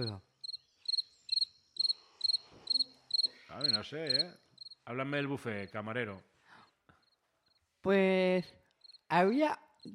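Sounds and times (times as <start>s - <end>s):
speech: 0.0s - 0.3s, 3.6s - 6.3s, 7.8s - 9.9s
crickets chirping outside: 0.0s - 4.8s, 7.0s - 7.6s, 8.7s - 9.9s.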